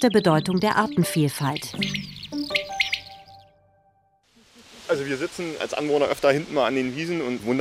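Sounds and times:
speech: 0.0s - 2.1s, 4.9s - 7.5s
birds chirping and warbling in a meadow: 0.0s - 3.6s.

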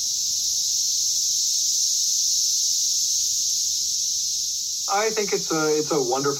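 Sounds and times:
chorus of cicadas buzzing: 0.0s - 6.3s
person speaking: 4.9s - 6.3s.

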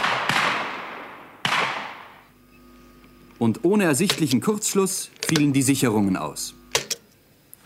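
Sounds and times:
gunshot-like bangs from a wall: 0.0s - 2.2s
speech: 3.4s - 6.6s.

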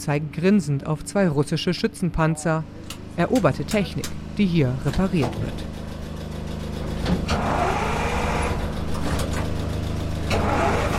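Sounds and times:
speech: 0.0s - 5.8s
infantry fighting vehicle engine rumbling and revving: 4.0s - 10.9s
infantry fighting vehicle engine starting: 5.4s - 10.9s.

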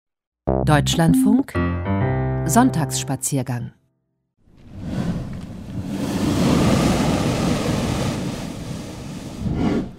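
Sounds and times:
speech: 0.7s - 1.9s, 2.5s - 3.8s
waves slapping and surging against hollow cliff rock: 4.6s - 9.9s.

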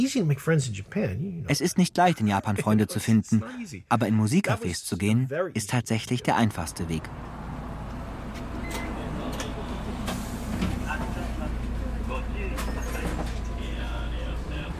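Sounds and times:
speech: 0.0s - 7.4s
city bus engine rumble in Japan: 6.3s - 14.7s
droning city bus interior hum: 7.0s - 14.7s.

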